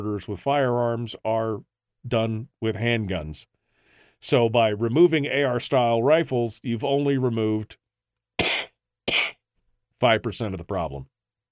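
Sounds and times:
speech: 0:00.0 - 0:03.6, 0:04.2 - 0:07.8, 0:09.1 - 0:09.4, 0:10.0 - 0:11.1
person giving deliberate mocking coughs: 0:08.4 - 0:09.4.

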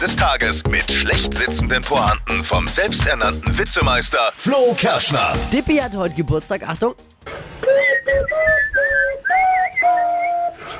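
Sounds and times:
speech: 0:00.1 - 0:08.9
recorder flute played shakily and off-key: 0:07.6 - 0:10.7.

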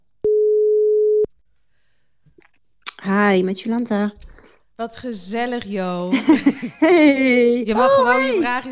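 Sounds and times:
telephone ringing tone while placing a call: 0:00.3 - 0:01.3
speech: 0:03.1 - 0:08.7
laughter: 0:06.1 - 0:08.7.

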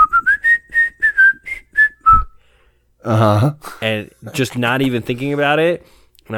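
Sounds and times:
person whistling a short lilting tune: 0:00.0 - 0:02.4
speech: 0:03.0 - 0:06.3.

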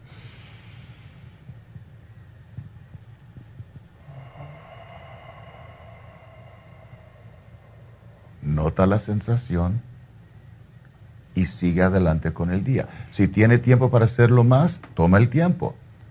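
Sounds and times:
slow deep breathing in and out: 0:00.0 - 0:08.9, 0:12.8 - 0:13.2
steady low hum: 0:00.0 - 0:11.4
speech: 0:08.6 - 0:10.0, 0:11.4 - 0:15.8.

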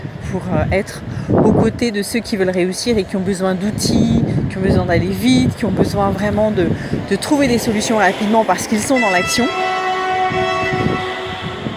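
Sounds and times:
speech: 0:00.3 - 0:10.5
low rumbling city din: 0:02.4 - 0:11.7
loud sustained horn-like tone: 0:07.0 - 0:11.7.

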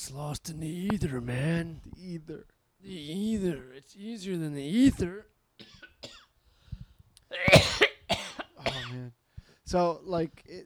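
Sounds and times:
speech: 0:00.1 - 0:06.2, 0:08.7 - 0:10.6
person coughing with dry and hacking coughs: 0:07.3 - 0:09.0.

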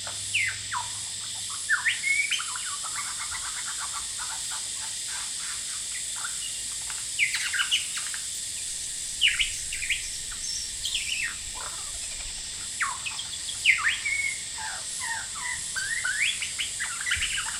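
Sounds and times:
continuous shrill cicada chorus: 0:00.0 - 0:17.5
male lyrebird singing outside a window at Horsfield Bay New South Wales: 0:00.3 - 0:04.3, 0:07.2 - 0:08.2, 0:09.2 - 0:11.8, 0:12.8 - 0:17.5.

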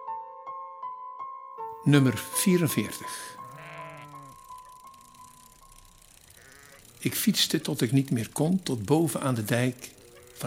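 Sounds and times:
speech: 0:01.8 - 0:03.4, 0:07.0 - 0:10.4
sheep bleating: 0:02.7 - 0:05.3, 0:06.3 - 0:07.1.

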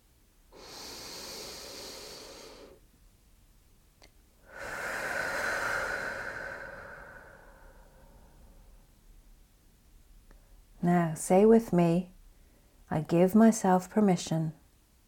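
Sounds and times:
deep breathing in and out: 0:00.5 - 0:02.8, 0:04.4 - 0:08.9
speech: 0:10.8 - 0:12.1, 0:12.9 - 0:14.6.

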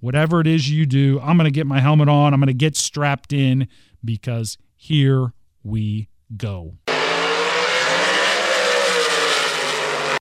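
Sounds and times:
speech: 0:00.0 - 0:06.8
drag racing car engine roaring during a burnout in the water box: 0:06.9 - 0:10.1
drag racing car tire squeal during a burnout: 0:06.9 - 0:10.1.

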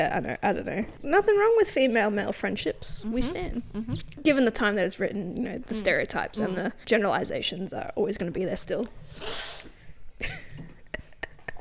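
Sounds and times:
speech: 0:00.0 - 0:09.5, 0:10.2 - 0:10.4
loud sniff through the nose: 0:09.1 - 0:10.0.

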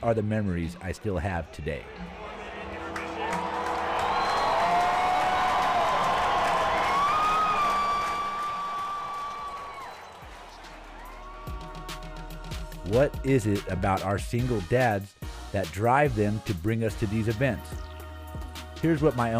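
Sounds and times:
speech: 0:00.0 - 0:02.2, 0:12.9 - 0:17.9, 0:18.8 - 0:19.3
large crowd at a Raiders game in the Coliseum roaring: 0:01.8 - 0:12.7
crowd whoops and whistles: 0:03.6 - 0:10.2.

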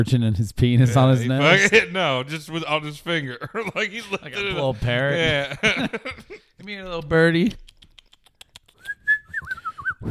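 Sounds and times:
speech: 0:00.0 - 0:07.6
laughter: 0:01.2 - 0:06.5
person whistling a short wavering high tune: 0:08.8 - 0:10.0.

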